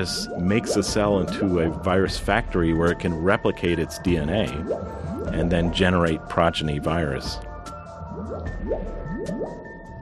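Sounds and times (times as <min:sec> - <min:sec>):
bubbles blooping and dripping: 0:00.0 - 0:03.0, 0:04.1 - 0:06.2, 0:07.9 - 0:10.0
speech: 0:00.0 - 0:07.5.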